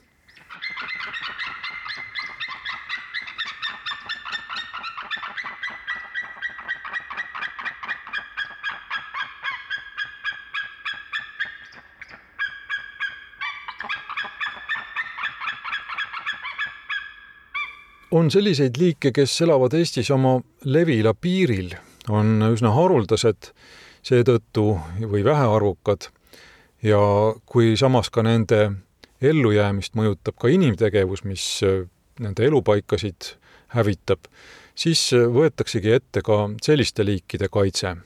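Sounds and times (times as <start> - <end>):
pair of white-tailed eagles calling: 0.0 - 18.8
speech: 18.1 - 26.2, 26.8 - 38.0.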